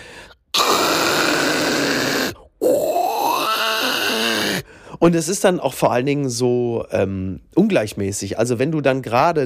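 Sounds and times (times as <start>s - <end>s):
voice imitating loud snoring: 0.5s - 4.6s
speech: 5.0s - 9.4s.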